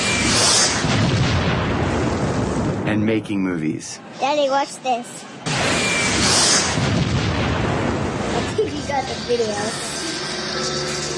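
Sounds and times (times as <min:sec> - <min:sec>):
bomb explosion sound effect roar from a home movie: 0:00.0 - 0:03.0, 0:05.5 - 0:11.1
speech: 0:02.9 - 0:05.3, 0:09.0 - 0:09.9.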